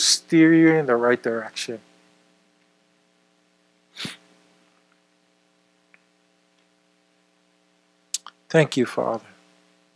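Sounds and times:
speech: 0.0 - 1.9, 8.5 - 9.3
quiet steady electrical hum: 0.0 - 9.9
person sneezing: 3.9 - 4.3.

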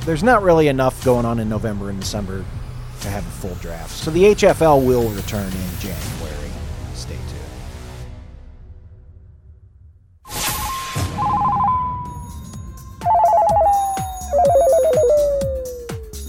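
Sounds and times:
speech: 0.0 - 6.4
steady tone sinking in pitch: 11.1 - 12.2, 13.0 - 16.2
phone ringing in warbling trill bursts: 13.0 - 15.6
rhythmic thumps: 13.0 - 16.2.

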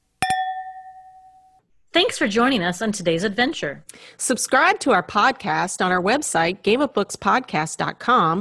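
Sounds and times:
two wine glasses clinking in a toast: 0.2 - 1.6
speech: 2.0 - 8.4.

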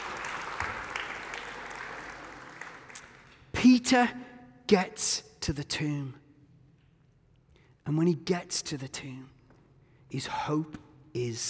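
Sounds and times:
crowd applauding: 0.0 - 3.4
speech: 3.6 - 6.2, 7.9 - 9.4, 10.1 - 11.4.

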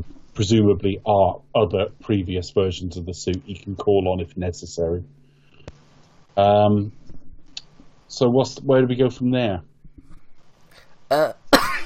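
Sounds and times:
speech: 0.0 - 5.2, 6.4 - 7.0, 8.1 - 9.7, 11.1 - 11.8
harsh coughs: 11.1 - 11.8.

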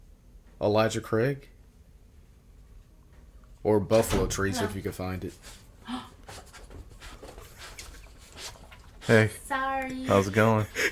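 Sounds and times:
speech: 0.6 - 1.6, 3.6 - 6.4, 9.1 - 10.9
dog panting: 6.3 - 9.5.

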